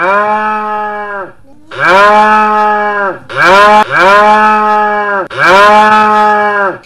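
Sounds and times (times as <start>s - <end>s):
cows mooing in a barn: 0.0s - 6.8s.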